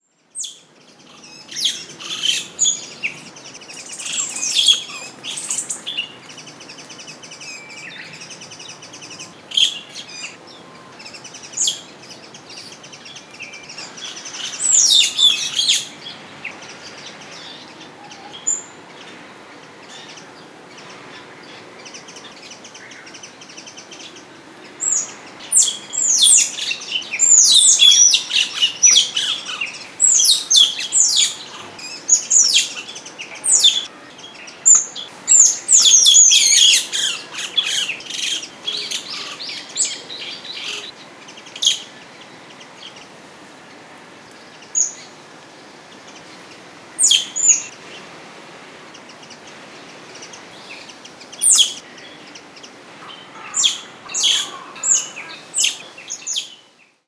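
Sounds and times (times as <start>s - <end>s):
Pallas's squirrel calling in Kamakura: 0.4s - 6.3s, 13.4s - 16.6s, 24.8s - 42.0s, 47.0s - 47.7s, 50.6s - 51.9s, 53.0s - 56.6s.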